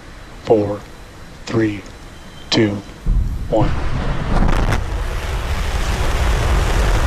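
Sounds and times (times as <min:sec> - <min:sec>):
speech: 0:00.4 - 0:00.9, 0:01.5 - 0:01.9, 0:02.5 - 0:02.9, 0:03.5 - 0:04.0
Starship rocket launch roar: 0:03.1 - 0:07.0.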